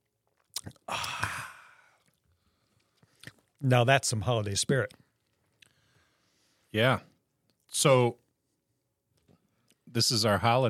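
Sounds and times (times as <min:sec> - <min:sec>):
person sipping an alcoholic drink: 0:00.3 - 0:03.6
breathy exhale: 0:00.9 - 0:02.9
speech: 0:03.6 - 0:05.0, 0:06.7 - 0:07.1, 0:07.7 - 0:08.2, 0:09.9 - 0:10.6.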